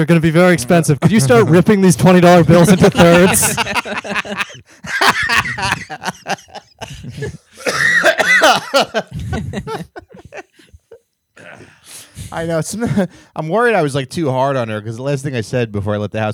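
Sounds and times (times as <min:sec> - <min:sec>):
speech: 0:00.0 - 0:10.0, 0:12.2 - 0:16.3
laughter: 0:01.0 - 0:11.6
person coughing and clearing their throat: 0:02.6 - 0:10.7, 0:11.4 - 0:12.0.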